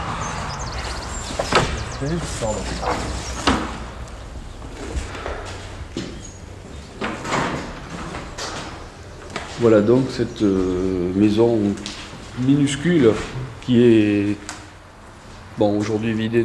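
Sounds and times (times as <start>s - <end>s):
old door lock turned open the reverse way: 1.1s - 8.9s
speech: 2.0s - 3.6s, 9.6s - 14.5s, 15.6s - 16.4s.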